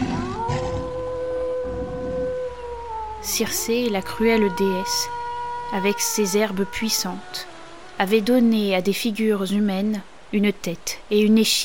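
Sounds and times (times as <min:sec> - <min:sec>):
low rough roaring rumble of lions at night: 0:00.0 - 0:01.0
wolf howling at night: 0:00.0 - 0:08.0
speech: 0:03.2 - 0:11.6.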